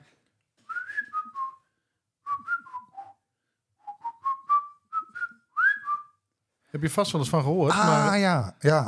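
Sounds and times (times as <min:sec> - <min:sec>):
person whistling a champion whistler's tune: 0:00.6 - 0:03.2, 0:03.8 - 0:06.2
speech: 0:06.7 - 0:08.8.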